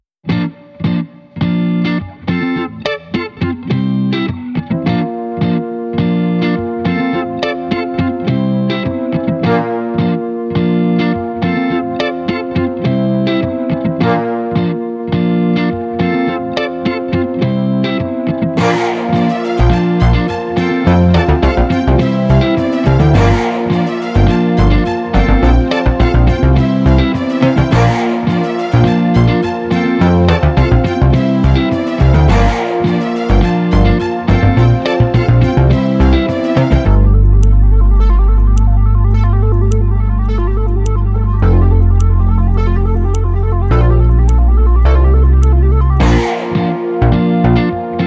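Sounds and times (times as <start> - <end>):
guitar: 0.2 - 48.0
person shouting: 18.6 - 19.4
violins: 18.6 - 37.1.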